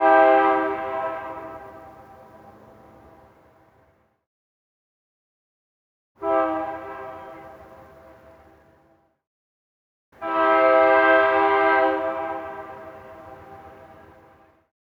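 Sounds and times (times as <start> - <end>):
distant train horn: 0.0 - 3.3, 6.2 - 8.7, 10.2 - 14.5.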